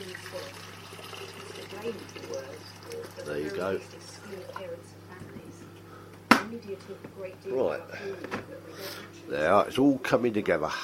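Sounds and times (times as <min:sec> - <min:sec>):
filtered water poured into a kettle: 0:00.0 - 0:03.6
low steady hum: 0:00.0 - 0:10.8
speech: 0:01.8 - 0:05.3, 0:06.6 - 0:10.8.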